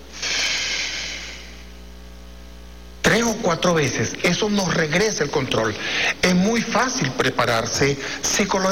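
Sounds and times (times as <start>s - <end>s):
slow deep exhale through the mouth in a diaphragmatic breathing exercise: 0.1s - 1.6s
speech: 3.4s - 8.7s.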